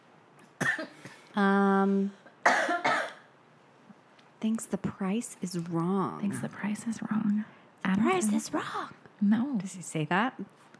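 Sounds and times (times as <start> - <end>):
harsh cough: 0.6 - 1.3, 2.4 - 3.3
speech: 0.8 - 2.2, 4.4 - 10.7.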